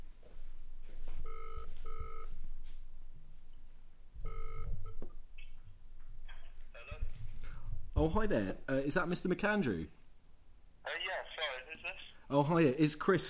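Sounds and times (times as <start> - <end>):
faint noise: 0.0 - 13.2
phone ringback tone through a loudspeaker while placing a call: 0.8 - 2.8, 4.2 - 7.2
speech: 8.0 - 10.0, 11.8 - 13.2.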